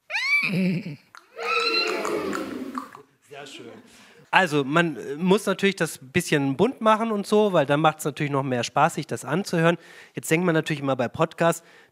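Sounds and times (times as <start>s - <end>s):
person imitating a horse's whinny with their voice: 0.0s - 3.0s
speech: 0.4s - 1.1s, 3.4s - 11.9s.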